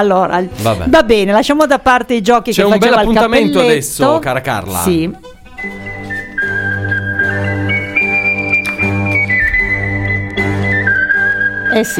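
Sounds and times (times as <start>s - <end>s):
speech: 0.0s - 6.0s, 11.7s - 11.9s
steady bass-heavy musical backing: 2.6s - 11.8s
whistled theme-tune jingle melody: 5.5s - 11.9s.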